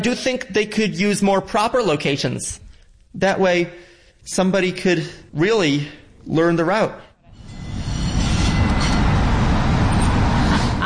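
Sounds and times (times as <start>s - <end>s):
speech: 0.0s - 7.1s
subway train rumbling on rails: 7.4s - 10.8s.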